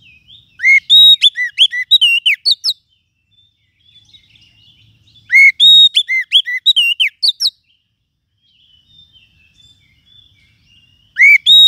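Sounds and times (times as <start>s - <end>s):
lovebird sharp clipped chirps and whistled notes used to lure lovebirds: 0.0s - 2.9s, 5.2s - 7.7s, 11.0s - 11.6s.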